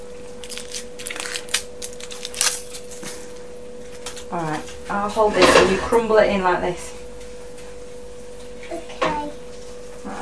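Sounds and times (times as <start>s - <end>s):
low steady hum: 0.0s - 10.1s
foil being peeled off an Oxo stock cube: 0.3s - 3.1s
speech: 4.3s - 7.0s.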